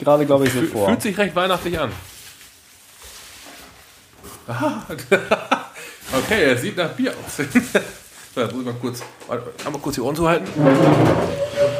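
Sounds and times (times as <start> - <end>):
speech: 0.0 - 2.2, 4.5 - 5.4, 6.1 - 11.7
laughter: 4.5 - 5.9, 7.3 - 8.0
chair creaking with a groaning squeak: 8.9 - 11.7.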